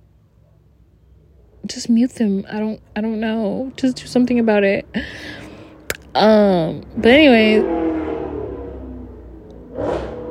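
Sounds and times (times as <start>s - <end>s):
speech: 1.7s - 5.4s, 6.1s - 7.8s
cars revving their engines down a street: 3.5s - 10.3s.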